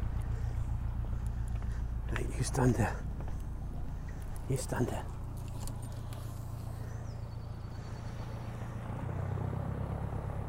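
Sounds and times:
small ferry boat engine droning as it leaves the island: 0.0 - 10.4
speech: 2.1 - 3.1, 4.5 - 5.2.

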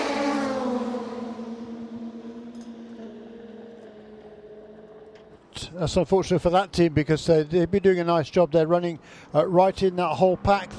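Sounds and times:
race car engine in the pit lane: 0.0 - 5.8, 9.7 - 10.7
speech: 5.6 - 10.7.

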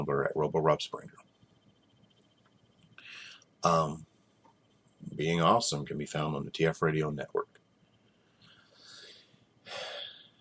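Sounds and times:
speech: 0.0 - 1.3, 3.1 - 4.1, 5.2 - 7.5
soft breathy exhales: 8.6 - 10.3.

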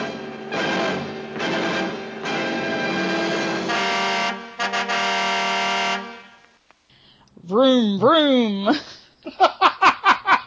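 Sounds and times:
car horn honking: 0.5 - 6.5
speech: 8.0 - 9.5
laughter: 8.7 - 10.4.

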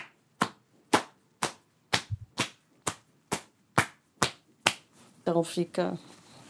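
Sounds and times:
foley body-on-body slaps of arms on bare belly: 0.0 - 4.9
speech: 5.3 - 6.1.

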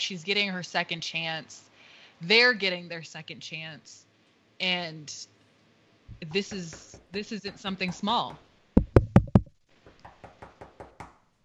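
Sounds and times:
speech: 0.0 - 4.0, 4.6 - 5.3, 6.2 - 8.5
loud sharp knocks on a door: 8.8 - 11.2.

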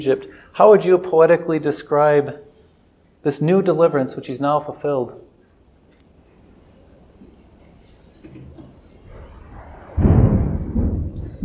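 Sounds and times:
speech: 0.0 - 2.5, 3.2 - 5.3
soft steady hiss: 0.0 - 11.4
deep roll of thunder: 9.1 - 11.4.

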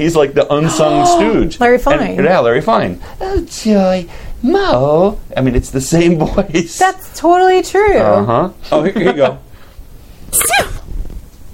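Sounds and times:
speech: 0.0 - 9.4
tiny high-pitched sneeze with squeaky tail: 10.3 - 10.8.

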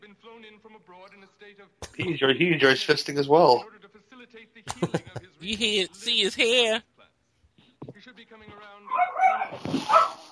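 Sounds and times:
speech: 0.2 - 6.9
laughter: 4.7 - 5.5
dogs barking excitedly: 8.9 - 10.3.

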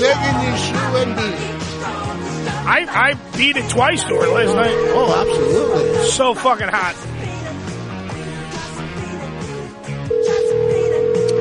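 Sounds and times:
faint music: 0.0 - 11.3
speech: 2.7 - 7.1
phone line ringback tone of an outgoing call: 4.0 - 6.2, 10.0 - 11.3.

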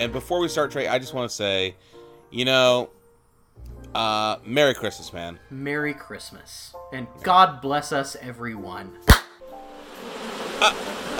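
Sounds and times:
speech: 0.0 - 3.0, 3.6 - 9.2, 10.6 - 11.1
swarm of bees buzzing: 9.8 - 11.1.

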